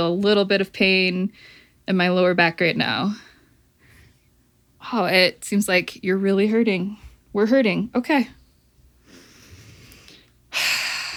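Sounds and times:
speech: 0:00.0 - 0:03.3, 0:04.8 - 0:08.4, 0:10.5 - 0:10.9
deep breath: 0:03.2 - 0:04.3, 0:09.0 - 0:11.1.

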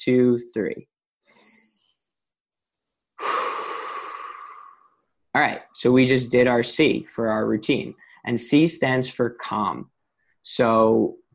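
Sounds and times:
speech: 0:00.0 - 0:01.4, 0:05.3 - 0:11.2
deep breath in through the nose and out through the mouth: 0:01.2 - 0:05.2.

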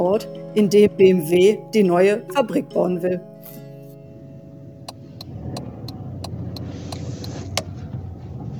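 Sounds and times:
speech: 0:00.1 - 0:03.6
car engine and road noise heard from inside: 0:04.0 - 0:08.5
turn signal clicks: 0:04.9 - 0:07.7.

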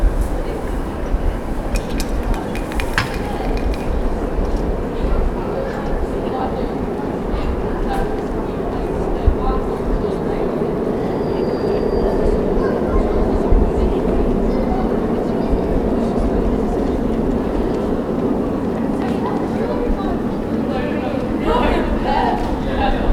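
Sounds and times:
dense rumble of traffic on a town high street: 0:00.0 - 0:23.1
murmured voices: 0:00.0 - 0:23.1
knocks and clatters of a market being set up: 0:01.7 - 0:04.0.

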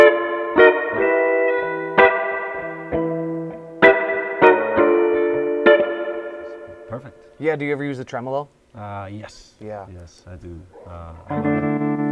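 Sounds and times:
electric guitar through an amp with spring reverb: 0:00.0 - 0:07.4, 0:11.2 - 0:12.1
speech: 0:07.4 - 0:12.1.

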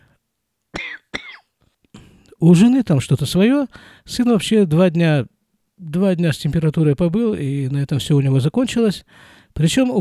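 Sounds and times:
person coughing harshly close to the microphone: 0:00.8 - 0:02.2
speech: 0:02.4 - 0:09.9
soft breathy noises: 0:03.7 - 0:04.1, 0:09.0 - 0:09.6.

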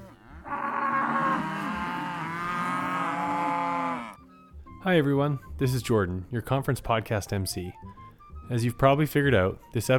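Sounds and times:
cow mooing: 0:00.0 - 0:04.3
speech: 0:04.8 - 0:09.9.

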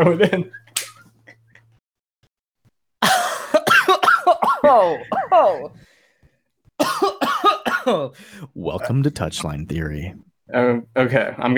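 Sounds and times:
speech: 0:00.0 - 0:00.6, 0:04.7 - 0:05.9, 0:07.9 - 0:11.5
harsh coughing: 0:03.0 - 0:05.8, 0:06.8 - 0:08.1.

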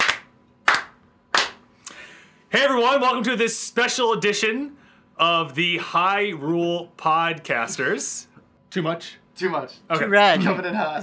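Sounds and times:
slow hand claps in a quiet room: 0:00.0 - 0:01.7
speech: 0:02.5 - 0:11.0.

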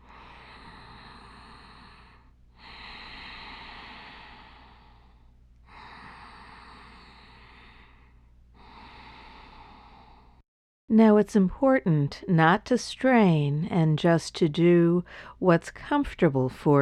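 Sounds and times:
ocean breath through a constricted throat: 0:00.0 - 0:10.4
speech: 0:10.9 - 0:16.7.

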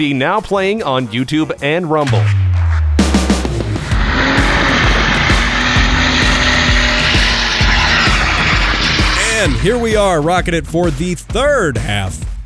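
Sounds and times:
speech: 0:00.0 - 0:02.4, 0:09.4 - 0:12.3
Jaguar car engine revving while driving and shifting gears: 0:02.0 - 0:10.4.

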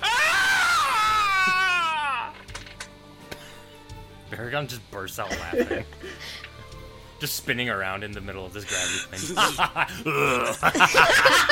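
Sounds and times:
high-pitched scream of pain: 0:00.0 - 0:02.4
speech: 0:04.3 - 0:06.5, 0:07.2 - 0:11.5
laughter: 0:05.2 - 0:06.1, 0:09.2 - 0:11.5.

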